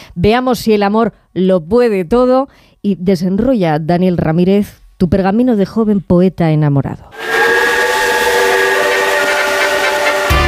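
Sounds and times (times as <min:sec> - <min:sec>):
speech: 0:00.2 - 0:07.2
passenger train rumbling toward Pamplona: 0:07.2 - 0:10.4.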